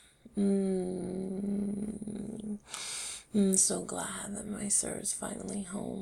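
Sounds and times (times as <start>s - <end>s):
speech: 0.4s - 1.1s, 3.4s - 6.0s
human voice imitating cat purring: 0.4s - 2.7s.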